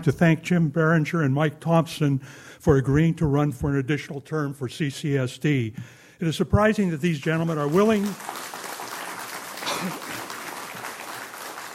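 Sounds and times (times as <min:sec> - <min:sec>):
speech: 0:00.0 - 0:08.6
audience applause at board meeting: 0:07.3 - 0:11.7.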